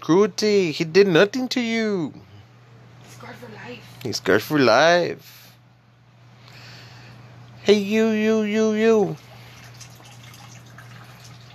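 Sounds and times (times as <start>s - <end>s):
speech: 0.0s - 2.3s, 3.2s - 5.4s, 7.6s - 9.3s
low electrical hum: 0.0s - 11.5s
water dripping from a leaking air conditioner: 9.1s - 11.5s.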